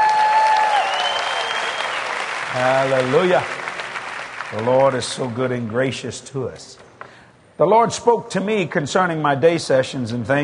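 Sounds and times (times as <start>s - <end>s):
church congregation applauding during a morning service: 0.0s - 5.7s
speech: 2.6s - 3.6s, 4.5s - 6.8s, 7.6s - 10.4s.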